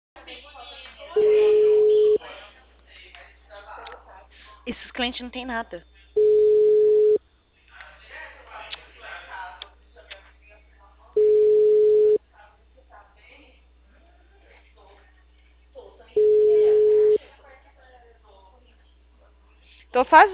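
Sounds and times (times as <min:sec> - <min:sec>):
telephone busy signal: 0:01.2 - 0:02.2, 0:06.2 - 0:07.2, 0:11.2 - 0:12.2, 0:16.2 - 0:17.2
speech: 0:04.7 - 0:05.9, 0:19.9 - 0:20.3.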